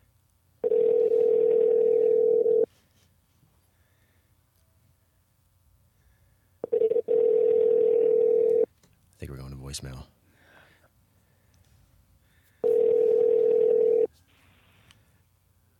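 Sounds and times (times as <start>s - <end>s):
phone ringback tone while calling out: 0.6s - 2.7s, 6.6s - 8.7s, 12.6s - 14.1s
speech: 9.7s - 10.2s.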